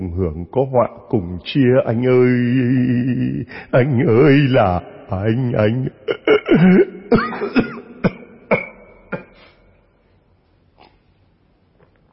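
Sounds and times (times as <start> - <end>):
speech: 0.2 - 7.7
man coughing in harsh hacking bursts: 6.0 - 9.8.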